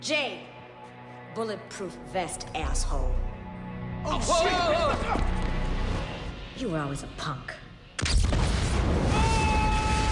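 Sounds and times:
speech: 0.0 - 0.5, 1.4 - 3.3, 4.0 - 5.6, 6.6 - 9.0
building exploding: 8.0 - 10.1.

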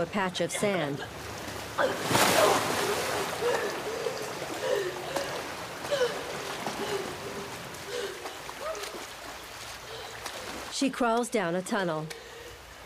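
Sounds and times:
speech: 0.0 - 2.8, 10.8 - 12.2
water sloshing and rushing: 0.0 - 11.2
water splashing into a pool: 1.2 - 10.8.

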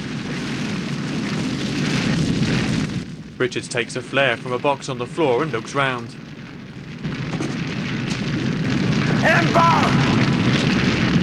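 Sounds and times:
flamethrower igniting spilled liquid on a floor: 0.0 - 11.2
speech: 3.4 - 6.3, 9.2 - 10.1.

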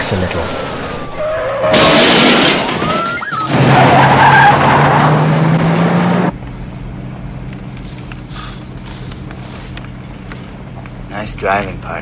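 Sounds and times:
police cars skidding with squealing tires: 0.0 - 6.3
sustained engine roar: 0.0 - 12.0
speech: 0.1 - 0.6, 1.6 - 2.3, 11.3 - 12.0
pursuing police cars bashing into each other: 0.4 - 6.0
police car crashing into a pile of oil drums and rubbish: 0.8 - 5.1.

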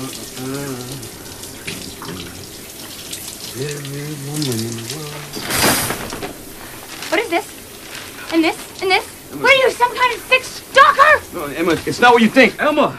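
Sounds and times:
person humming a wordless tune: 0.0 - 1.1, 3.6 - 5.4
shower water running: 0.0 - 12.9
speech: 3.6 - 5.5, 7.1 - 7.5, 8.3 - 9.1, 9.8 - 10.5, 11.4 - 12.9.

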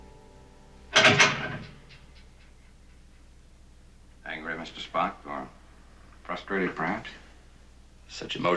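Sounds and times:
metal bars of a barred prison cell door slammed by hand: 0.9 - 2.0
speech: 4.6 - 5.6, 6.3 - 7.2, 8.1 - 8.5.

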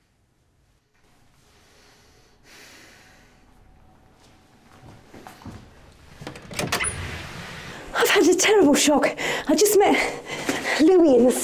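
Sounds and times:
door being opened: 6.0 - 7.8
speech: 8.2 - 11.4.

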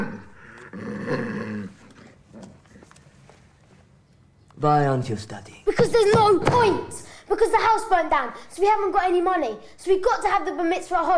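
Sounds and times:
dog snarling and growling: 0.0 - 2.6
speech: 4.6 - 11.1.

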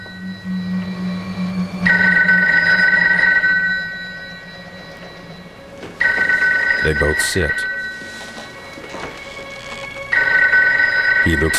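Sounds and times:
low rumbling background: 0.0 - 6.9
telephone ringing: 1.8 - 11.5
speech: 6.8 - 7.8, 11.2 - 11.5.

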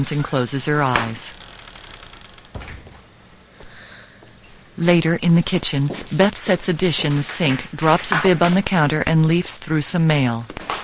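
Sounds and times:
speech: 0.0 - 1.5, 4.8 - 10.7
steady faint hiss: 1.0 - 10.4
bedroom door shutting thump: 2.4 - 3.1.

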